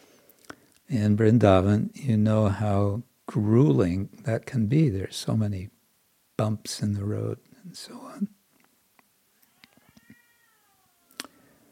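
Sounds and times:
speech: 0:00.9 - 0:05.8, 0:06.4 - 0:08.4
cat meowing: 0:09.4 - 0:11.5.

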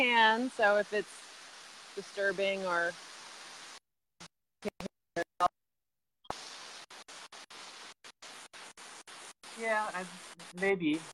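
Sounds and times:
speech: 0:00.0 - 0:01.3, 0:02.0 - 0:03.1, 0:05.4 - 0:05.6, 0:09.6 - 0:11.1
steady broadband rushing water hissing like static: 0:00.0 - 0:03.8, 0:06.3 - 0:11.1.

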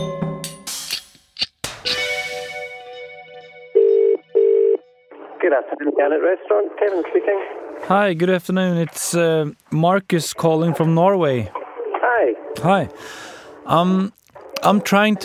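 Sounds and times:
ringback tones of an outgoing phone call from Norway to Scotland: 0:03.7 - 0:04.8
speech: 0:05.5 - 0:11.6, 0:12.2 - 0:15.2.

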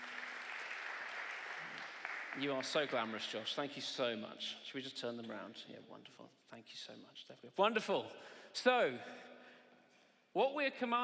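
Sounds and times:
crowd applauding: 0:00.0 - 0:03.4
speech: 0:02.4 - 0:09.4, 0:10.4 - 0:11.0.

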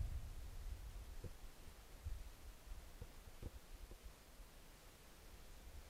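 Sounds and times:
soft steady wind blowing: 0:00.0 - 0:04.2.

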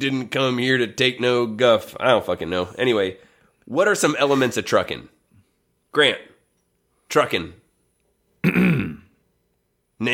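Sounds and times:
speech: 0:00.0 - 0:05.2, 0:05.9 - 0:06.3, 0:07.1 - 0:07.6
person clearing throat: 0:08.4 - 0:09.2.

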